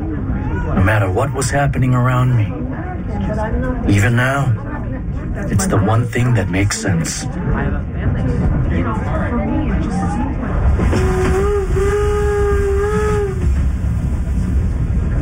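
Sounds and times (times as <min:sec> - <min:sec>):
speech: 0:00.8 - 0:11.4
train rumbling approaching a camp at Gila River in the desert outside Phoenix: 0:00.9 - 0:15.1
long steady train steam whistle: 0:10.8 - 0:13.7.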